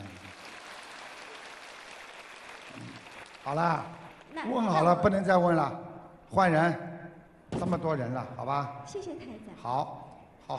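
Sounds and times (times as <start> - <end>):
audience clapping: 0.0 - 4.9
speech: 3.4 - 6.9, 7.6 - 10.5.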